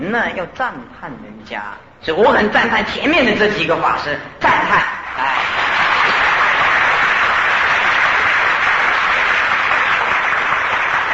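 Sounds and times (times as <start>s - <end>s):
speech: 0.1s - 5.6s
audience applause: 5.2s - 11.1s.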